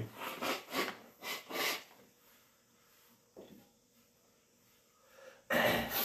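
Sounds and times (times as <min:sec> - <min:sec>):
person sniffing: 0:00.2 - 0:02.0, 0:05.1 - 0:06.0.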